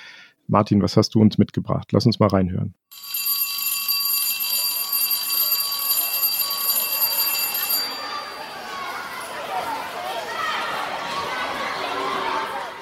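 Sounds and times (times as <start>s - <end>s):
speech: 0.5s - 3.1s
loud continuous electric school bell ringing: 2.9s - 9.4s
children chattering and shouting in a crowded schoolyard: 4.2s - 12.7s.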